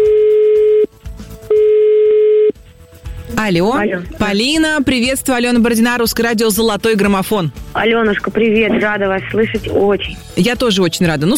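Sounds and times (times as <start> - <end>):
phone outgoing call tone, steady mid-pitched electronic tone: 0.0 - 0.9, 1.5 - 2.6
speech: 3.4 - 11.3.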